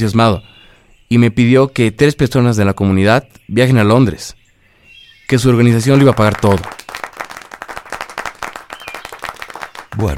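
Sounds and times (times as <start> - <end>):
speech: 0.0 - 4.4, 5.3 - 7.1, 10.0 - 10.1
small group clapping in a cemetery: 5.8 - 10.1.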